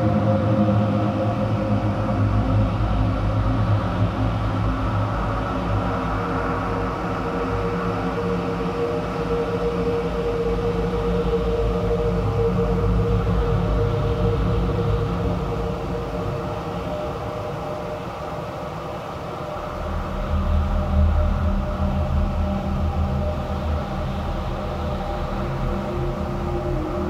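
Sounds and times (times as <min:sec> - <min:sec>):
steady low drone in a large cavernous empty warehouse: 0:00.0 - 0:27.0.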